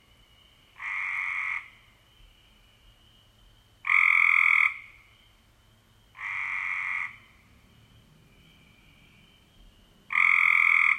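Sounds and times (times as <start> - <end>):
Cope's gray treefrog giving buzzing trills: 0.8 - 1.8, 3.8 - 5.3, 6.2 - 7.4, 10.1 - 10.9.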